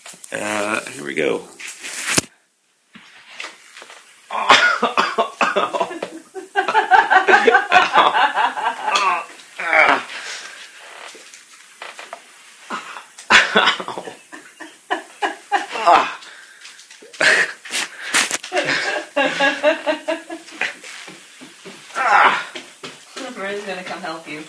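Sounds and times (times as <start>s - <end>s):
person on the floor foam rolling their shins: 0.0s - 4.4s, 5.6s - 14.3s, 15.5s - 24.4s
speech: 0.3s - 1.6s
person straining and groaning with breathy wheezes and pained grunts: 4.3s - 4.6s, 8.8s - 11.2s, 12.7s - 13.2s, 15.6s - 16.4s, 21.9s - 22.7s
laughter: 4.8s - 9.3s, 13.3s - 16.2s, 18.5s - 20.8s.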